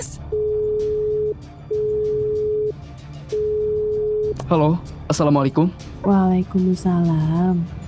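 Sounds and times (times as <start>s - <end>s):
telephone ringback tone during outgoing call: 0.3s - 4.4s
speech: 4.5s - 7.8s.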